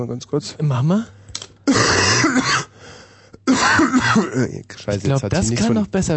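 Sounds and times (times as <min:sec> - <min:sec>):
speech: 0:00.0 - 0:01.2, 0:01.8 - 0:02.7, 0:03.5 - 0:06.1
ill person coughing deliberately: 0:01.7 - 0:02.8, 0:03.4 - 0:04.6.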